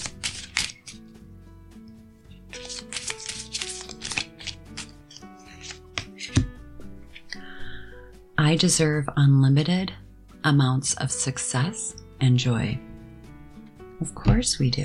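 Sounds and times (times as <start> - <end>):
affirmation cards being shuffled: 0.0 - 1.1, 2.4 - 7.4
soft music: 0.0 - 14.8
speech: 8.4 - 12.9, 14.0 - 14.8.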